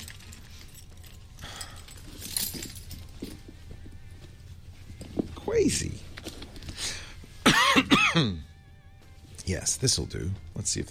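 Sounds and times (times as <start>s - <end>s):
ring of keys jangling: 0.0s - 3.8s
speech: 5.6s - 6.0s, 8.2s - 8.5s, 9.5s - 10.8s.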